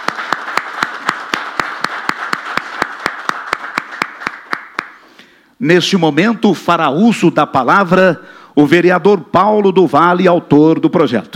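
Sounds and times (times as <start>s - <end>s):
audience applauding for an honoree: 0.0s - 5.1s
speech: 5.6s - 11.3s.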